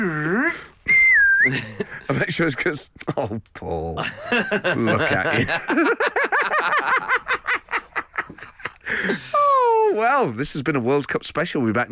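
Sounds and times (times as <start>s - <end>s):
loud comic wolf whistle: 0.9s - 1.6s
laughter: 1.4s - 2.4s, 4.0s - 9.6s
speech: 1.5s - 6.2s, 9.0s - 9.3s, 10.0s - 11.9s.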